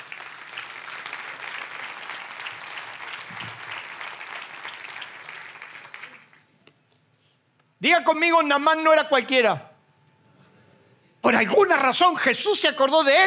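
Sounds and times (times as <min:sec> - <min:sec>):
audience applause: 0:00.0 - 0:06.5
speech: 0:07.8 - 0:09.7, 0:11.3 - 0:13.2.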